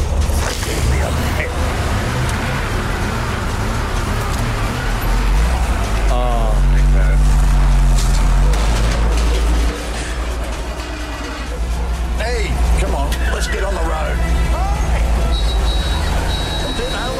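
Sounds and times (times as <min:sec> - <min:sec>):
loud rumbling vehicle engine revving: 0:00.0 - 0:17.1
manual car gears grinding and crunching: 0:00.0 - 0:17.1.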